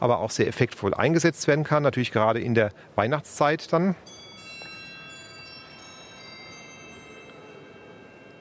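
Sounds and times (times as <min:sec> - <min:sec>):
speech: 0:00.0 - 0:04.3
organ bowl glockenspiel bells ringing: 0:04.0 - 0:08.3.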